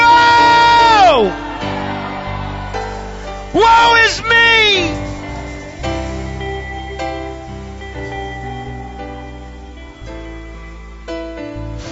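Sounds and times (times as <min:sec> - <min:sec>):
crowd of voices shouting together during a prayer: 0:00.0 - 0:05.2.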